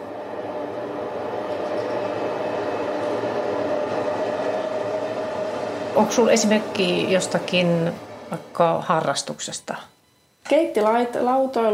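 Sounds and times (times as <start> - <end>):
train rolling across a railway bridge: 0.0 - 9.2
droning metallic hum of train on railway bridge: 0.0 - 11.7
speech: 6.0 - 9.9, 10.5 - 11.7.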